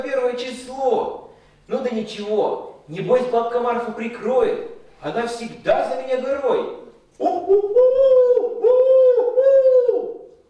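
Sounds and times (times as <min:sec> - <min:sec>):
speech: 0:00.0 - 0:08.5
eagle owl hooting: 0:07.2 - 0:10.4.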